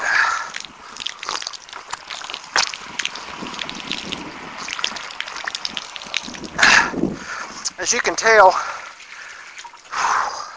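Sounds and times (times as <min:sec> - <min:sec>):
sips and swallows of water: 0:00.0 - 0:07.7
plastic water bottle crinkling: 0:00.4 - 0:06.6
speech: 0:07.9 - 0:08.7.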